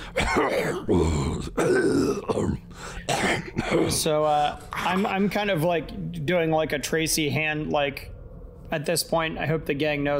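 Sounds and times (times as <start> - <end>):
voice imitating wet phlegmy coughing: 0.0 - 4.1
speech: 0.3 - 10.1.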